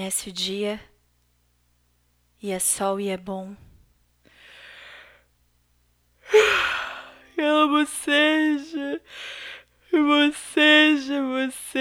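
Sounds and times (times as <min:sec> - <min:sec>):
speech: 0:00.0 - 0:00.9, 0:02.4 - 0:03.7, 0:07.4 - 0:11.7
person yawning: 0:06.3 - 0:09.5.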